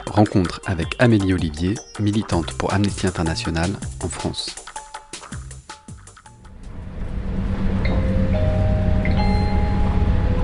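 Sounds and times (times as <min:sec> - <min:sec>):
speech: 0:00.2 - 0:04.6
train pulling into the station at Caen: 0:06.7 - 0:10.4.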